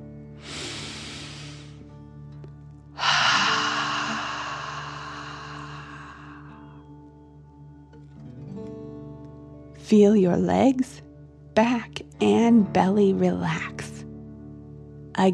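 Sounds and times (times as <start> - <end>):
deep breathing in through nose and out through mouth: 0.4 - 1.9, 3.0 - 6.7
speech: 9.9 - 11.0, 11.6 - 13.8, 15.2 - 15.3.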